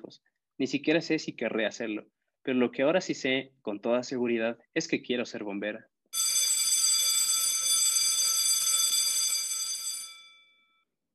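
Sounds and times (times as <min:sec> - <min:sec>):
speech: 0:00.1 - 0:05.9
school bell ringing: 0:06.2 - 0:10.6.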